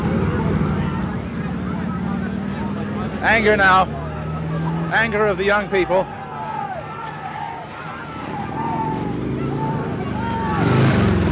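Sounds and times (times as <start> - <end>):
police motor scooters passing: 0.0 - 11.3
speech: 3.2 - 4.0, 4.9 - 6.2.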